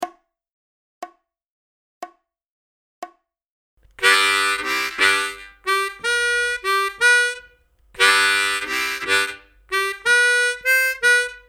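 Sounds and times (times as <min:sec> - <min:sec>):
solo rhythm harmonica: 0:04.0 - 0:11.4.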